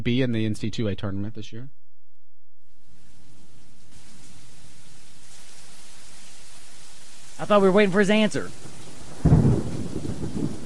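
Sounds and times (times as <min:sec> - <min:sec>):
speech: 0:00.0 - 0:01.8, 0:07.4 - 0:08.8
steady rain hiss in thunderstorm: 0:02.8 - 0:10.6
low rolling thunder rumbling: 0:08.6 - 0:10.6.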